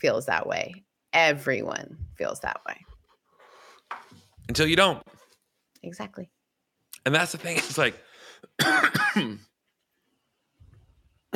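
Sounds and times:
speech: 0.0s - 2.9s, 3.9s - 5.2s, 5.8s - 6.4s, 7.0s - 9.5s
person coughing and clearing the throat at a microphone: 7.4s - 7.9s, 8.6s - 9.4s.

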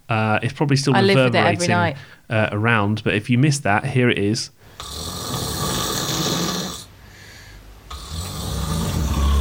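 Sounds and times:
speech: 0.1s - 5.3s
person snoring loudly: 4.8s - 6.9s, 7.9s - 9.3s.

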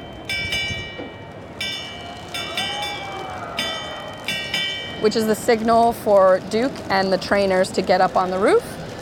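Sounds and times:
old-fashioned school bell ringing: 0.0s - 5.7s
outdoor murmur: 0.0s - 8.9s
speech: 5.0s - 8.8s.

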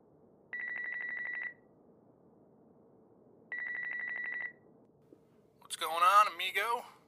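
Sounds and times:
low steady hum: 0.0s - 7.0s
cell phone call ringing through the earpiece: 0.5s - 1.6s, 3.5s - 4.6s.

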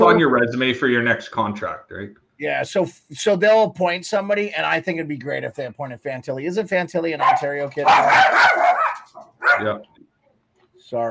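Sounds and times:
speech: 0.1s - 8.8s, 9.4s - 10.0s
dog barking: 7.2s - 9.8s.

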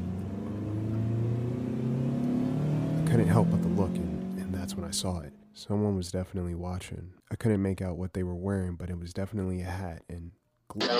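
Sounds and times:
car engine revving and accelerating as the vehicle speeds away: 0.0s - 5.4s
speech: 3.1s - 4.1s, 4.7s - 10.9s.

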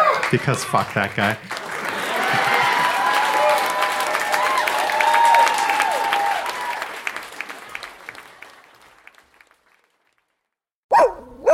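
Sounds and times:
laughter: 0.1s - 6.4s
speech: 0.3s - 1.6s
loud dense clamor: 1.7s - 7.9s
dogs barking and yipping: 10.9s - 11.5s.

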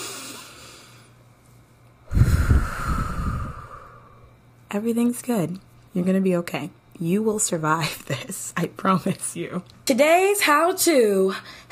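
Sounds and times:
person taking a deep breath: 2.1s - 4.3s
speech: 4.8s - 11.7s.

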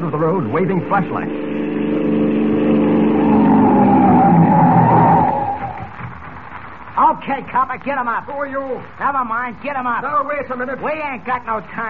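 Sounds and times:
speech: 0.0s - 1.7s, 7.1s - 11.8s
police car roaring in at a crossroads: 0.0s - 6.6s
police car tires screeching in a long skid: 0.2s - 6.1s.

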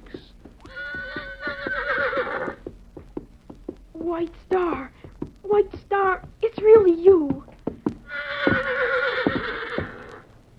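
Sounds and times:
horse hooves clopping while walking: 0.0s - 10.5s
quivering horse whinnying: 0.7s - 2.6s, 8.1s - 10.2s
speech: 4.1s - 4.9s.

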